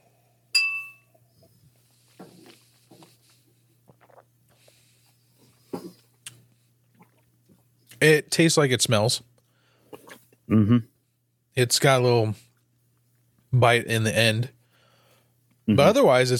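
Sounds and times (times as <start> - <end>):
faint steady hum: 0.0 - 16.3
two drinking glasses clinking in a toast: 0.5 - 1.2
speech: 8.0 - 9.3, 10.5 - 10.9, 11.6 - 12.5, 13.5 - 14.6, 15.7 - 16.3.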